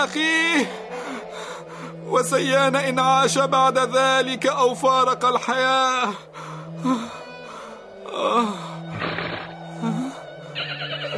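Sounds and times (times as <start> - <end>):
speech: 0.0 - 1.2, 1.8 - 7.2, 8.2 - 8.7
steady low humming tone: 0.4 - 11.1
horse in the desert whinnying and snorting: 8.9 - 9.7, 10.6 - 11.1.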